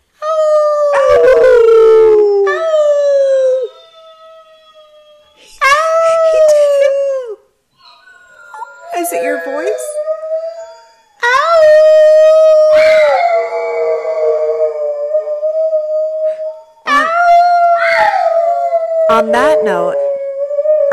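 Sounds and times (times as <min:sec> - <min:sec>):
dog howling: 0:00.2 - 0:20.9
dog yipping: 0:07.8 - 0:10.0.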